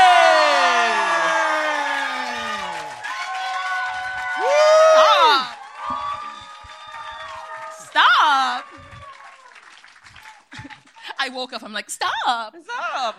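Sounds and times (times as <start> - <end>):
small crowd cheering and whooping: 0.0 - 11.1
small crowd applause: 0.0 - 11.3
speech: 11.4 - 13.1.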